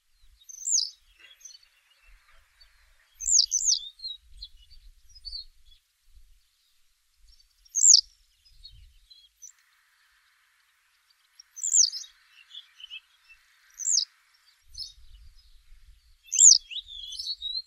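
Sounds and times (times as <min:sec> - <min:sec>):
black-headed wagtail: 0:00.5 - 0:04.0, 0:07.8 - 0:08.0, 0:11.4 - 0:15.0, 0:16.3 - 0:17.4.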